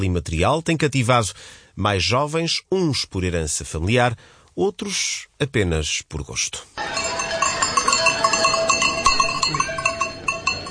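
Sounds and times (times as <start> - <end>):
speech: 0.0 - 7.0
cowbells clanking on a herd of cows driven to mountain pasture: 6.8 - 10.6.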